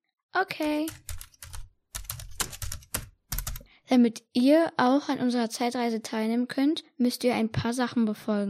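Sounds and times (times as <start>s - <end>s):
speech: 0.4s - 1.1s, 3.9s - 8.4s
brisk typing on a computer keyboard: 0.6s - 3.6s.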